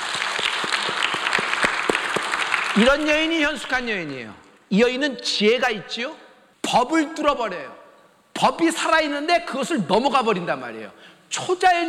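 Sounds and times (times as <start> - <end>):
church congregation clapping hands in a steady rhythm: 0.0 - 4.7
speech: 2.8 - 7.8, 8.4 - 11.8.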